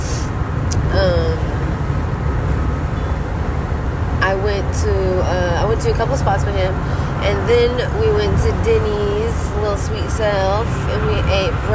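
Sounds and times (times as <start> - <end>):
road noise inside a moving car: 0.0 - 11.7
speech: 4.7 - 11.7.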